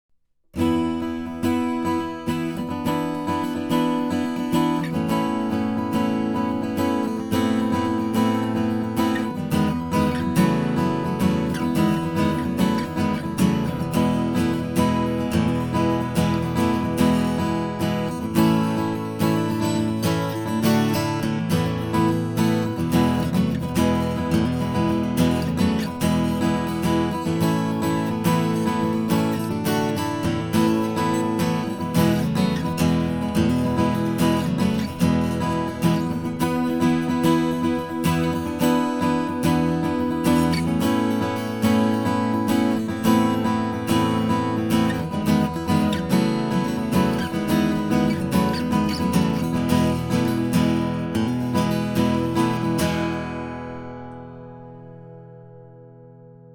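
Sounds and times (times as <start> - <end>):
guitars strumming: 0.6 - 56.5.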